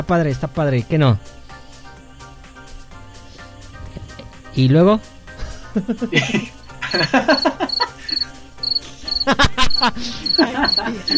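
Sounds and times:
speech: 0:00.0 - 0:01.4, 0:04.6 - 0:05.1, 0:05.8 - 0:07.7, 0:09.2 - 0:11.1
people laughing: 0:05.4 - 0:11.1
crickets chirping: 0:06.5 - 0:11.1.

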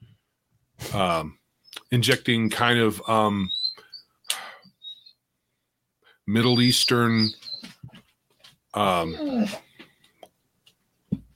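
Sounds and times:
speech: 0:00.9 - 0:03.6, 0:06.3 - 0:07.5, 0:08.8 - 0:09.7
dog whining: 0:08.9 - 0:09.7.

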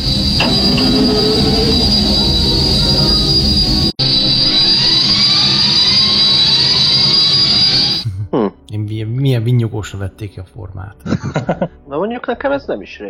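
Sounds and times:
X-wing starfighter wings opening with a high-pitched mechanical whine: 0:00.0 - 0:08.0
speech: 0:00.4 - 0:01.9, 0:09.4 - 0:13.0
laughter: 0:11.0 - 0:11.8.

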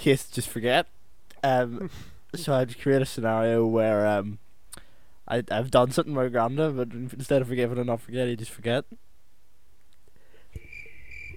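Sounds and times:
speech: 0:00.0 - 0:04.4, 0:05.3 - 0:09.0
crickets chirping: 0:10.6 - 0:11.3.

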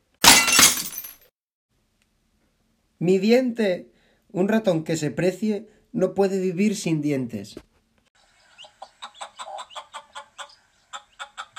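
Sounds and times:
speech: 0:03.0 - 0:07.7
hen clucking: 0:08.3 - 0:11.5.

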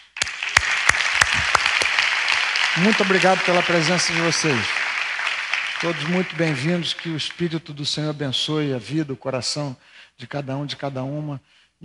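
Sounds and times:
crowd applauding: 0:00.0 - 0:07.6
louder sharper claps: 0:00.0 - 0:07.6
speech: 0:02.8 - 0:04.8, 0:05.8 - 0:11.8.

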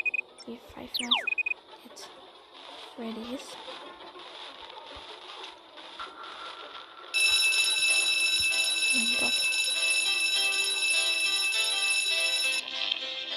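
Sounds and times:
speech: 0:00.5 - 0:02.2, 0:03.0 - 0:03.9
video game electronic alarm tone: 0:01.0 - 0:01.6, 0:07.2 - 0:12.6.

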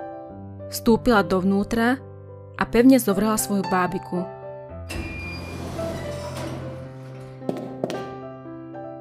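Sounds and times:
speech: 0:00.7 - 0:05.0
elevator doors in an apartment building sliding shut: 0:04.9 - 0:07.8.

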